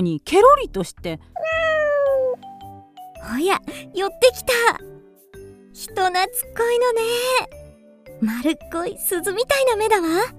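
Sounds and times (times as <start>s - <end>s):
speech: 0.0s - 1.6s, 3.2s - 4.9s, 5.8s - 7.6s, 8.2s - 10.3s
kitten giving a drawn-out meow sliding down in pitch: 1.4s - 2.4s.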